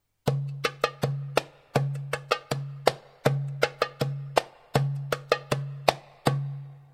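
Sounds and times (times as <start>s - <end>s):
darbuka drumming: 0.2s - 6.9s.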